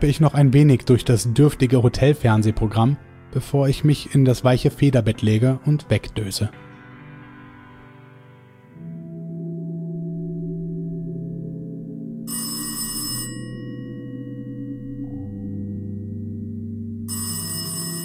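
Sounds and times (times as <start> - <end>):
speech: 0.0 - 6.6
sustained low drone of music: 0.0 - 18.0
bedside telephone bell ringing: 12.3 - 14.3, 17.1 - 18.0.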